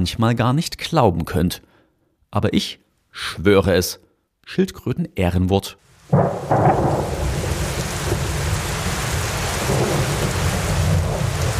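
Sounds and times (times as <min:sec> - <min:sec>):
speech: 0:00.0 - 0:01.7, 0:02.3 - 0:07.2
dense rain drumming on a window: 0:05.9 - 0:11.5
deep rumble of thunder: 0:06.1 - 0:11.5.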